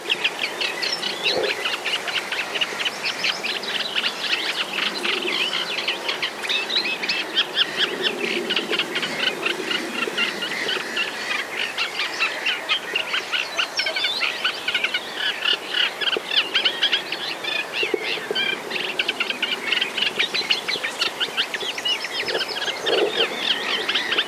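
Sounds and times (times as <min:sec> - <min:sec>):
Eurasian reed warbler singing: 0:00.0 - 0:24.2.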